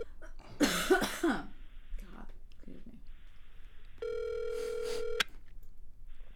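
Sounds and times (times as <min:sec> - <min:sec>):
quiet phone line hiss: 0:01.5 - 0:02.3, 0:03.1 - 0:05.3, 0:06.0 - 0:06.3
electronic ringback tone of an outgoing phone call: 0:04.0 - 0:05.3.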